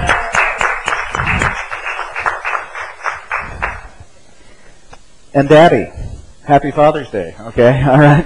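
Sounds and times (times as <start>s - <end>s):
crowd applauding in a reverberant room: 0.0s - 4.0s
speech: 5.4s - 8.2s.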